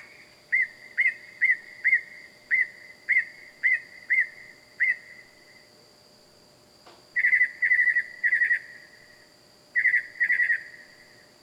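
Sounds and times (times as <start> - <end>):
bird calling at night in the wild: 0.5 - 5.2, 7.2 - 8.7, 9.8 - 10.8.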